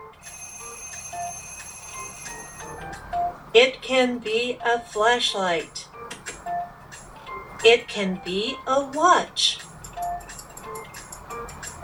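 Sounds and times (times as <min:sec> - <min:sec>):
electronic alarm clock ringing with high-pitched chime: 0:00.0 - 0:03.4
speech: 0:03.6 - 0:05.8, 0:07.6 - 0:09.6.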